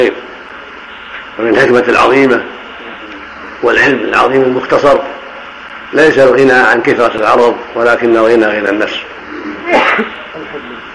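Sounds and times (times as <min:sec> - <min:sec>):
speech: 0:00.0 - 0:00.3, 0:01.4 - 0:02.6, 0:03.6 - 0:05.2, 0:05.9 - 0:10.7
steady hiss: 0:00.0 - 0:10.9
sharp explosive sneeze: 0:09.7 - 0:10.1.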